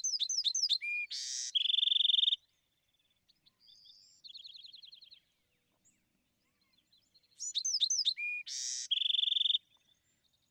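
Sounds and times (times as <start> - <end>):
Bewick's wren song with buzzy note, trills and rising whistle: 0.0 - 2.5, 7.4 - 9.9.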